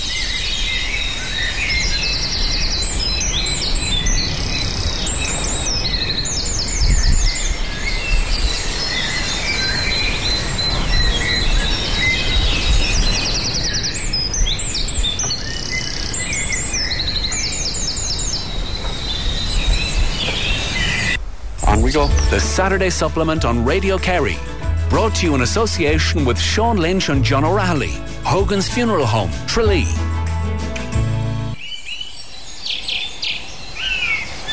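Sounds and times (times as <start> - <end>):
steady outdoor hiss during a dawn chorus walk: 0.0 - 34.5
coal tit singing from a tree: 1.0 - 26.0
speech: 22.3 - 30.0.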